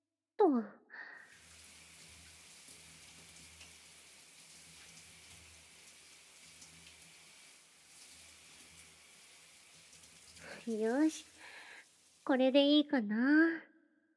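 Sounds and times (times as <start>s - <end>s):
speech: 0.5s - 0.8s, 10.6s - 11.3s, 12.3s - 13.7s
shower water spraying, rinsing off soap foam: 1.3s - 12.5s.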